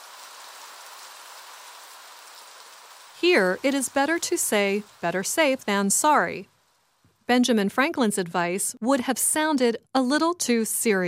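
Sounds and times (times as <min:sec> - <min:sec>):
steady rain pattering on a surface: 0:00.0 - 0:07.3
speech: 0:03.2 - 0:06.5, 0:07.3 - 0:11.0.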